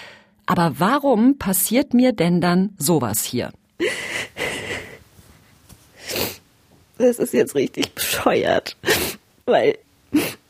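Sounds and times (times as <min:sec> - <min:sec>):
speech: 0:00.5 - 0:03.6, 0:07.0 - 0:10.3
person sobbing and sniffling: 0:03.8 - 0:05.1, 0:08.8 - 0:09.2, 0:10.1 - 0:10.4.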